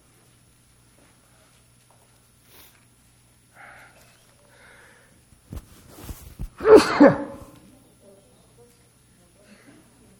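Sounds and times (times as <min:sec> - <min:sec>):
single loud sneeze: 0:06.6 - 0:07.6.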